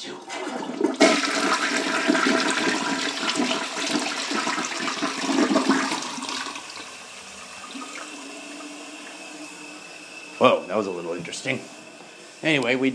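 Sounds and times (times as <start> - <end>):
toilet flushing with rush of swirling water: 0.0 - 12.9
toilet flush click: 0.2 - 9.5
speech: 10.4 - 11.8, 12.4 - 12.9.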